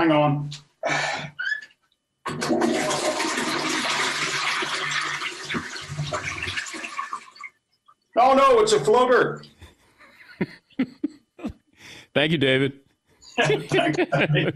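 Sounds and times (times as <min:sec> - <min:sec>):
speech: 0:00.0 - 0:01.3, 0:08.2 - 0:09.5, 0:10.4 - 0:10.9, 0:12.2 - 0:12.8, 0:13.4 - 0:14.5
toilet flushing: 0:02.3 - 0:07.5
laughter: 0:10.1 - 0:11.5, 0:13.3 - 0:14.5.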